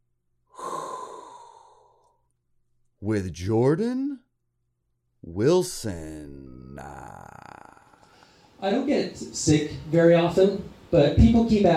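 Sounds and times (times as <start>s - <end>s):
hot breath drawn in: 0.5s - 2.2s, 8.0s - 8.6s
speech: 3.0s - 4.2s, 5.2s - 7.4s, 8.6s - 11.7s.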